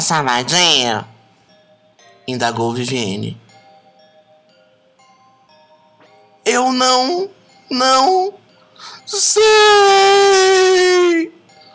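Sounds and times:
speech: 0.0 - 1.1, 2.3 - 3.4, 6.4 - 11.4
woman crying and sobbing: 7.2 - 11.4
woman wailing cry: 9.0 - 11.4.

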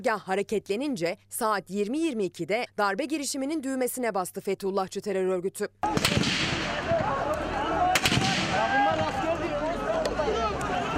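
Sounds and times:
speech: 0.0 - 7.4
gunshots at the General Staff headquarters in Ankara during a coup attempt: 5.8 - 7.1, 7.9 - 9.2
dense outdoor din: 5.8 - 10.9.

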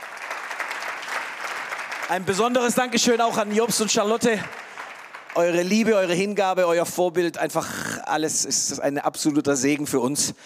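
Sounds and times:
audience applause in Tübingen: 0.0 - 6.7
speech: 2.1 - 4.6, 5.4 - 10.4.

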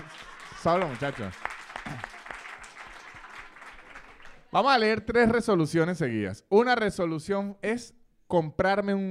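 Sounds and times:
crowd clapping: 0.0 - 4.9
speech: 0.6 - 2.1, 4.5 - 9.1.

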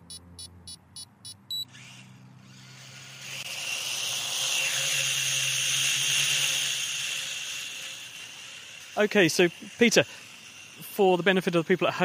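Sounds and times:
short electronic beeps: 0.0 - 1.7
small hobby drone buzzing whine hovering overhead: 0.0 - 12.0
speech: 9.0 - 10.2, 11.0 - 12.0.

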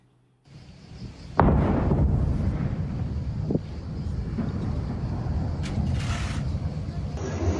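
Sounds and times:
long rolling rumble of explosion: 0.6 - 7.2
wind buffeting the microphone: 0.9 - 7.2
explosions at an air force ammunition depot: 1.3 - 7.2.

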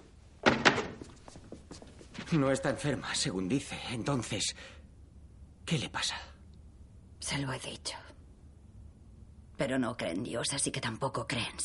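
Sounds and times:
wooden chair being set down: 0.4 - 1.1
speech: 2.3 - 4.8, 5.7 - 6.3, 7.2 - 8.1, 9.6 - 11.6.

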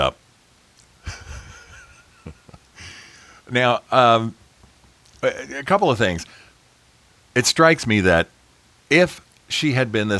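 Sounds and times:
laughter: 1.0 - 3.0
man taking a deep breath mid-speech: 2.8 - 3.5
speech: 3.5 - 4.4, 5.2 - 6.4, 7.4 - 10.1.

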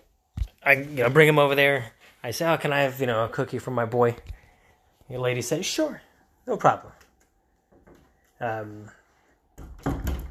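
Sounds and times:
speech: 0.7 - 4.4, 5.1 - 7.0, 8.4 - 9.0
door swinging shut with a solid low thump: 9.6 - 10.2.

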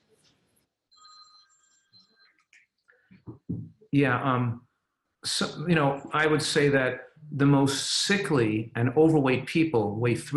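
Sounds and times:
phone ringtone electronic melody: 1.0 - 2.4
speech: 3.9 - 4.7, 5.3 - 10.3.

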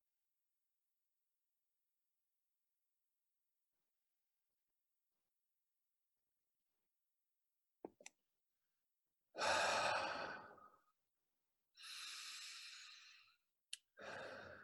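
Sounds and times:
slow deep breathing: 9.4 - 10.8, 11.8 - 13.4, 14.0 - 14.6.

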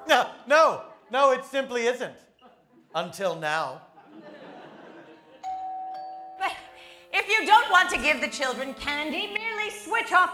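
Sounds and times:
speech: 0.1 - 2.3, 2.9 - 3.9, 7.3 - 10.3
laughter: 2.4 - 3.1, 3.8 - 5.5
doorbell ringing a two-note ding-dong: 5.4 - 6.7.

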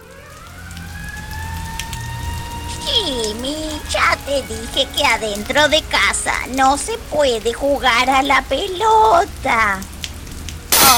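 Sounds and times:
faint siren-like tone: 0.0 - 4.0
steady rain: 0.0 - 10.9
speech: 3.1 - 9.9.

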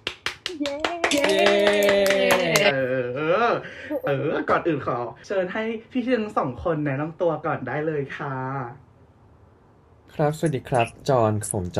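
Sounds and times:
host clapping hands in welcome: 0.0 - 2.7
speech: 0.6 - 8.8, 10.2 - 11.7
sustained voice in a drawn-out cheer: 1.1 - 2.7.

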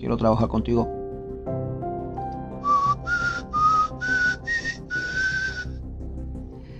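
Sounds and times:
speech: 0.0 - 1.6
person whistling a short bright tune: 2.6 - 5.7
steady music-like tones: 2.6 - 6.7.

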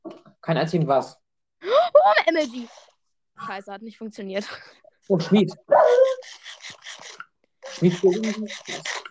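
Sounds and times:
speech: 0.5 - 1.2, 2.0 - 2.8, 3.4 - 6.2, 7.8 - 9.0
dogs barking while chasing someone: 5.7 - 6.2.

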